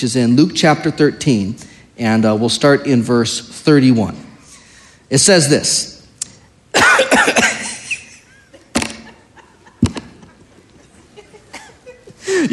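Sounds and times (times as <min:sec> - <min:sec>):
speech: 0:00.0 - 0:04.2, 0:05.1 - 0:05.9
person coughing in harsh chesty bursts after the flu: 0:06.7 - 0:08.2
laughter: 0:07.6 - 0:12.5.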